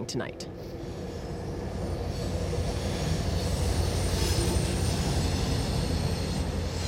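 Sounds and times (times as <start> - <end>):
speech: 0.0 - 0.8
northbound passenger train wheels roaring on rails: 0.4 - 6.8.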